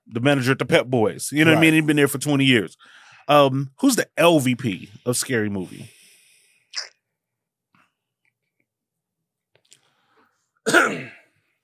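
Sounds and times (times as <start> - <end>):
speech: 0.1 - 6.0
person coughing: 10.7 - 11.3.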